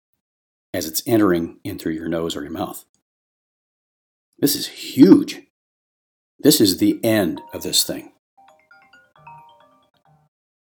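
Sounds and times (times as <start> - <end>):
speech: 0.7 - 2.9, 4.4 - 5.5, 6.4 - 8.2
phone ringtone electronic melody of bright stepping tones: 7.4 - 10.3.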